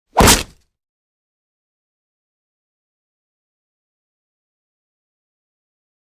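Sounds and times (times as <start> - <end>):
bullet tearing through body: 0.2 - 0.6.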